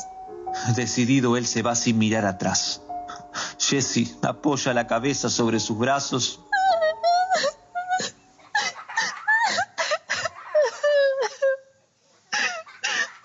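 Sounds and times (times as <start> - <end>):
speech: 0.0 - 2.8, 3.6 - 6.5
woman's sharp breathy gasps: 3.1 - 3.6
woman sobbing and whimpering with high-pitched wails: 6.4 - 13.2.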